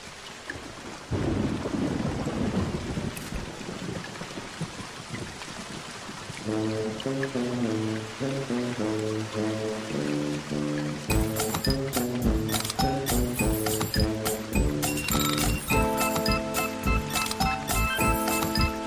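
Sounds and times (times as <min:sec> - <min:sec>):
steady rain: 0:00.0 - 0:18.8
deep rumble of thunder: 0:01.1 - 0:07.0
sustained musical tones: 0:06.5 - 0:18.8.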